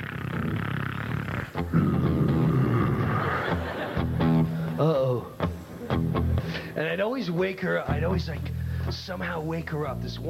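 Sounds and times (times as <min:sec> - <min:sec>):
person imitating a woman's loud snoring: 0:00.0 - 0:03.4
laughter: 0:02.3 - 0:06.8
speech: 0:06.9 - 0:10.2.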